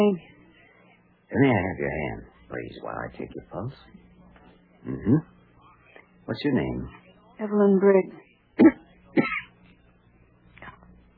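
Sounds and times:
speech: 0:00.0 - 0:00.3, 0:01.3 - 0:04.0, 0:04.8 - 0:05.3, 0:06.3 - 0:09.3
sick feverish patient coughing painfully: 0:08.6 - 0:09.5.

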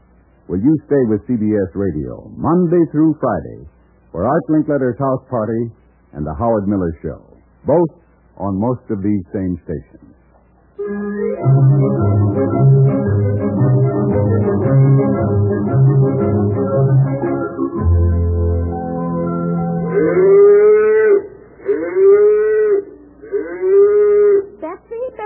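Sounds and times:
speech: 0:00.5 - 0:10.2, 0:10.8 - 0:13.2, 0:20.0 - 0:20.6
music: 0:10.8 - 0:20.4
cows mooing: 0:19.8 - 0:24.5.

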